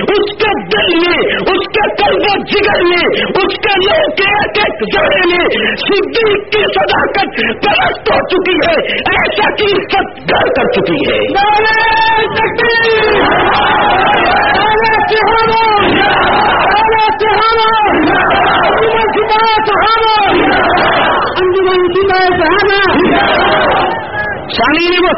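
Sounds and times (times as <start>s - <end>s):
speech: 0.2s - 14.4s, 15.1s - 25.1s
large audience chanting slogans in unison: 12.5s - 21.4s, 22.9s - 24.5s.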